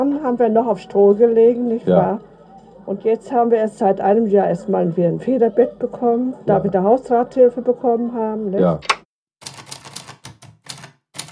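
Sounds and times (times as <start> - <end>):
speech: 0.0 - 9.0
rapid typewriter keystrokes: 9.4 - 11.3.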